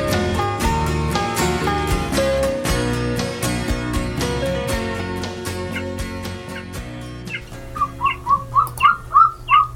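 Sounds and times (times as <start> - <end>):
music: 0.0 - 9.7
golden eagle crying out in sharp high yelping notes: 7.3 - 9.7.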